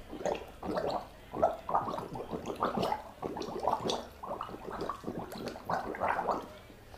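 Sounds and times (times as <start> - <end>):
person gargling liquid from a cup while humming a song: 0.2 - 6.5.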